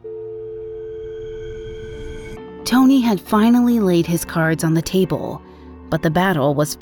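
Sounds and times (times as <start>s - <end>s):
telephone busy tone after a caller hangs up: 0.0s - 1.6s
speech: 2.6s - 6.8s.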